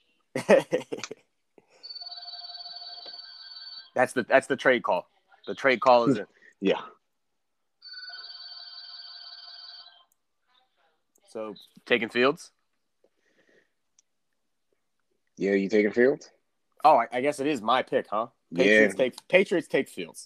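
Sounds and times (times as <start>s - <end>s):
speech: 0.4s - 1.2s, 4.0s - 7.0s, 11.4s - 12.6s, 15.4s - 20.2s
house landline telephone ringing with an electronic trill: 1.8s - 4.0s, 7.8s - 10.1s.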